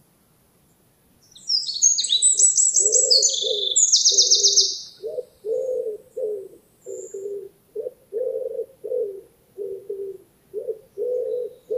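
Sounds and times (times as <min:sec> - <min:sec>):
Eurasian wren Troglodytes troglodytes song: 0:00.7 - 0:11.7
low soft cooing notes: 0:02.8 - 0:11.7.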